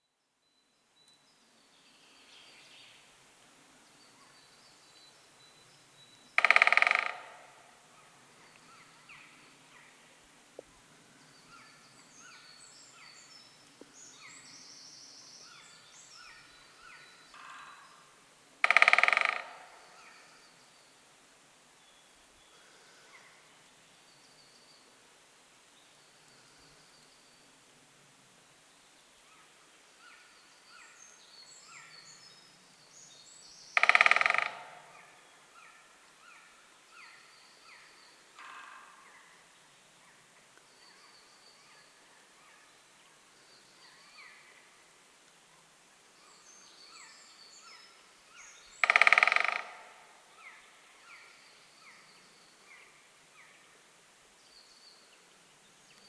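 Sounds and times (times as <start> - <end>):
great spotted woodpecker sounds: 6.0 - 14.6, 15.4 - 20.7, 33.6 - 44.7, 46.3 - 53.8.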